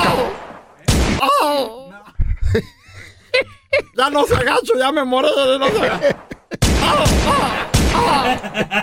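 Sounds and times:
video game gunfire: 0.0 - 1.2, 6.1 - 8.4
laughter: 2.1 - 4.2, 5.3 - 8.8
speech: 2.5 - 2.8, 3.4 - 6.3, 6.9 - 8.8.

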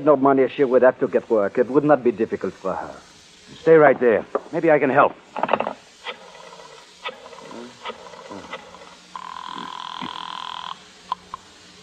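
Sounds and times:
speech: 0.0 - 5.8
telephone ringing: 6.1 - 10.8.

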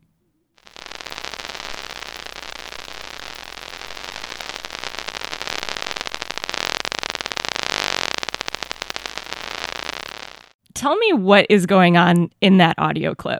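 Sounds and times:
electric fish discharges crackling through an electrode and audio amplifier: 0.6 - 10.6
speech: 10.8 - 13.3.

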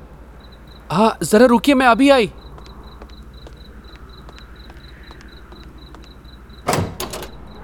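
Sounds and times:
faint steady high-pitched hum: 0.0 - 7.6
speech: 0.9 - 2.4
door latch solid clunk: 6.6 - 7.6.

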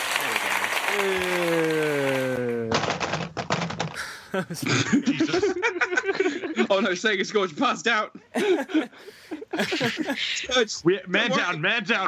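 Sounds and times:
uneven clapping from a few hands: 0.0 - 3.1
laughter: 0.9 - 2.8, 4.0 - 7.1, 8.2 - 11.6
drawn-out falling vocal tone: 0.9 - 2.9
speech: 1.0 - 1.6, 4.4 - 12.0.

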